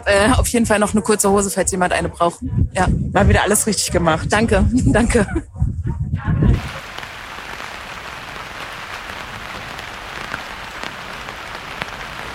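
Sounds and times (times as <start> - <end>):
speech: 0.0 - 5.5
rain pattering on surfaces: 6.6 - 12.3.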